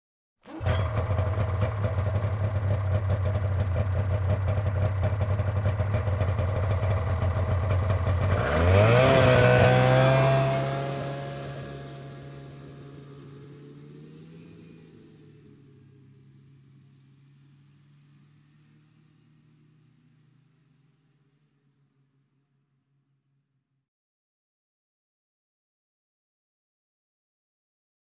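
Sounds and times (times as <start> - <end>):
scooter driving away: 0.5 - 21.8.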